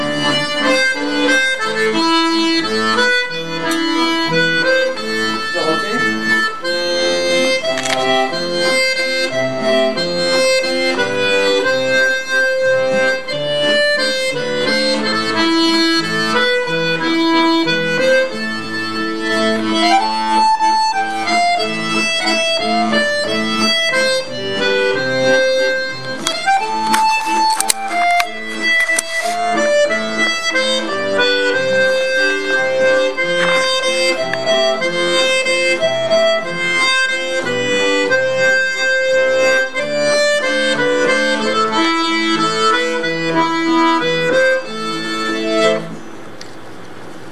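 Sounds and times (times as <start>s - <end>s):
violin: 0.0s - 46.0s
second voice: 5.5s - 6.2s.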